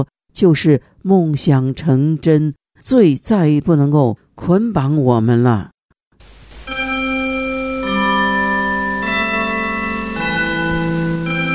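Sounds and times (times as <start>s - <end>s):
speech: 0.0s - 5.7s
bright bell-like chimes playing a slow melody: 6.7s - 11.5s.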